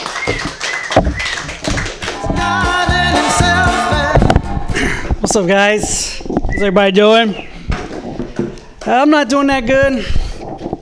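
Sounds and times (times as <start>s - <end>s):
audience clapping and cheering for a stand-up comedian: 0.0s - 4.6s
upbeat music with a thumping steady beat: 1.0s - 4.8s
speech: 5.3s - 7.5s, 8.8s - 10.2s.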